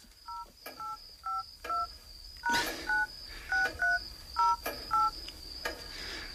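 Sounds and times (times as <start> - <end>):
mobile phone keypad dual-tone beeps entering PIN: 0.3 - 1.9, 2.9 - 5.2.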